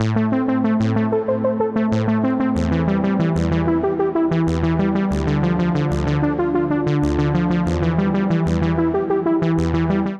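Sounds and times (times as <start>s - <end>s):
sawtooth synth bassline in A minor: 0.0s - 10.1s.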